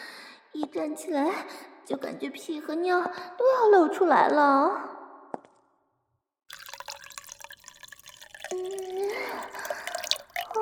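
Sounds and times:
speech: 0.6 - 5.0
water poured to make tea: 6.5 - 10.5.

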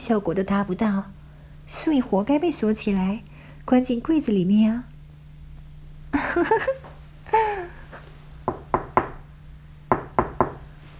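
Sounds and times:
speech: 0.0 - 4.9, 6.1 - 7.5
sharp hollow knocks on a door: 8.4 - 9.2, 9.9 - 10.7.

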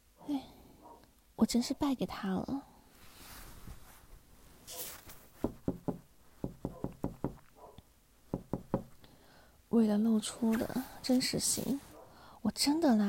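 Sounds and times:
speech: 1.4 - 2.7, 9.8 - 13.0
knocking on a door: 5.4 - 7.4, 8.3 - 9.0.

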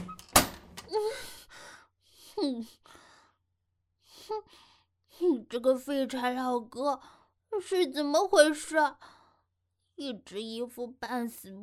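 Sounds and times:
foot kicking a door: 0.0 - 0.8
speech: 2.4 - 3.0, 4.3 - 4.6, 5.2 - 9.1, 10.0 - 11.6.

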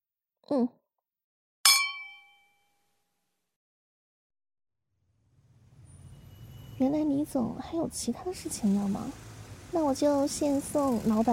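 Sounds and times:
speech: 0.5 - 0.8, 6.8 - 11.3
glasses clinking in a toast: 1.7 - 2.5.

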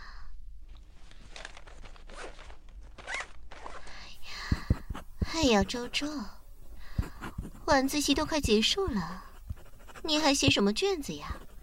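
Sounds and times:
trouser zipper being zipped up: 1.3 - 3.9
speech: 5.4 - 6.4, 7.7 - 9.3, 10.0 - 11.4.

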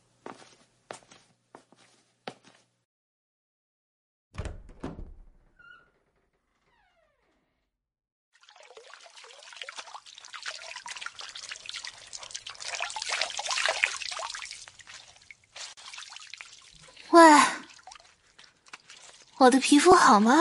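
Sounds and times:
shower water spraying as someone washes: 8.4 - 19.8
speech: 19.4 - 20.3.

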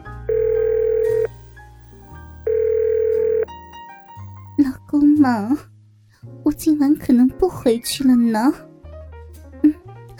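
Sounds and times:
phone ringback tone: 0.3 - 1.3, 2.4 - 3.5
speech: 4.6 - 5.7, 6.6 - 8.7.

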